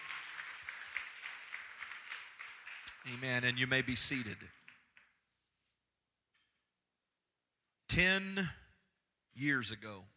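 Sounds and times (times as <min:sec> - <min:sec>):
crowd clapping steadily: 0:00.0 - 0:05.3
speech: 0:03.0 - 0:04.6, 0:08.0 - 0:08.6, 0:09.4 - 0:10.1.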